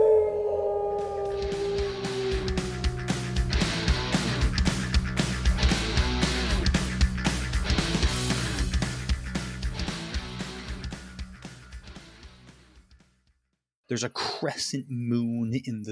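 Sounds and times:
loud wolf howl on a clear windless night: 0.0 - 4.5
rhythmic percussive music with a steady beat: 1.3 - 13.2
speech: 14.0 - 15.9.

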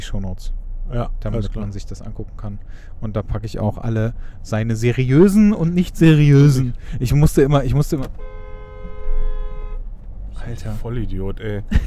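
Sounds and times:
speech: 0.0 - 8.4, 10.4 - 11.8
low rumbling traffic: 0.0 - 11.8
car horn honking: 7.4 - 10.0
laughter: 11.6 - 11.8.

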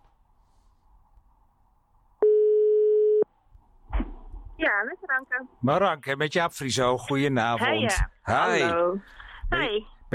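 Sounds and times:
electronic ringback tone of an outgoing telephone call: 2.2 - 3.2
speech: 4.8 - 10.1.

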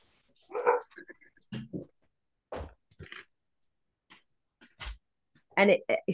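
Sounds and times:
pet dog barking to be let outside: 0.5 - 1.0
speech: 5.6 - 6.1.

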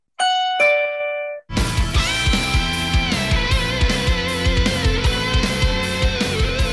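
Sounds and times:
two-note doorbell chime: 0.2 - 1.5
rhythmic music with a steady beat: 1.5 - 6.7.

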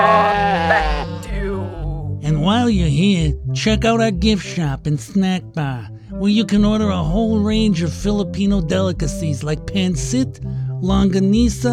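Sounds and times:
sheep bleating at an animal oddities carnival in Pecatonica: 0.0 - 1.8
speech: 2.6 - 11.7.

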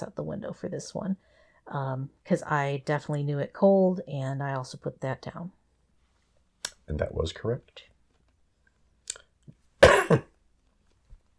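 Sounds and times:
speech: 0.0 - 5.6, 6.9 - 7.9, 10.1 - 10.3
person coughing: 9.8 - 10.4
throat clearing: 9.8 - 10.4.

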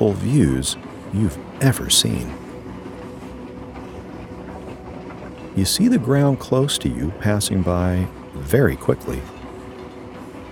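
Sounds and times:
speech: 0.0 - 2.4, 5.6 - 9.4
faint rhythmic rattling of train car: 0.0 - 10.5
train car rolling along rails: 0.0 - 10.5.

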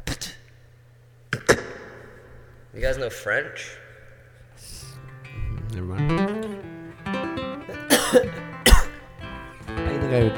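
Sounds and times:
speech: 2.8 - 3.8, 10.1 - 10.3
low hum of music or tones: 4.9 - 10.3
person coughing into the microphone: 7.7 - 9.0.

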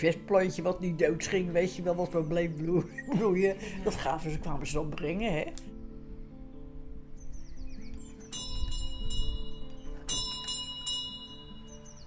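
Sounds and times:
speech: 0.0 - 5.7
laughter: 2.8 - 4.0
old doorbell ringing: 8.3 - 11.8.

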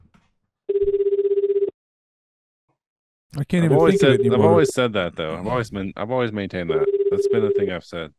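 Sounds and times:
warbling electronic telephone ringtone: 0.7 - 1.7, 3.8 - 4.7, 6.8 - 7.7
speech: 3.4 - 8.1.

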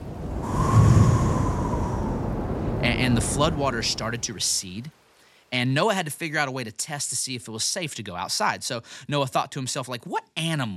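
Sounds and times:
wind blowing across open water: 0.0 - 4.9
speech: 3.1 - 10.7.

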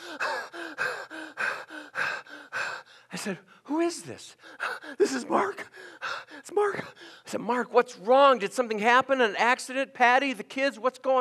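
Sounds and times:
person imitating hyperventilation with quick gasping breaths on a phone call: 0.0 - 3.6, 4.4 - 7.3
speech: 3.1 - 5.7, 6.4 - 11.1.

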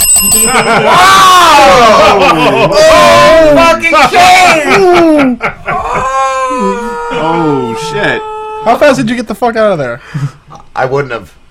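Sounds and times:
loud bright metallic bell ringing: 0.0 - 1.8
speech: 0.2 - 11.4
laughter: 0.3 - 8.2.

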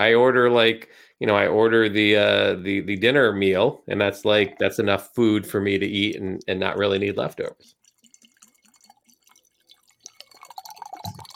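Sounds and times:
speech: 0.0 - 7.8
margarita pouring into a glass: 5.9 - 11.3.

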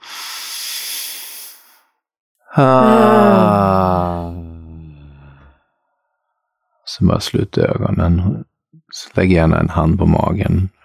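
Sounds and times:
long airy breath drawn in: 0.0 - 1.9, 4.8 - 5.7
speech: 2.5 - 4.3, 7.0 - 10.8.

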